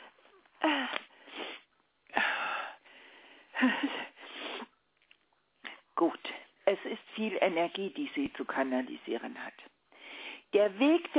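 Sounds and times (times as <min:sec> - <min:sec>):
forceful honking nose blows: 0:01.3 - 0:01.7, 0:04.2 - 0:04.7
speech: 0:03.6 - 0:04.1, 0:06.0 - 0:09.7, 0:10.5 - 0:11.1.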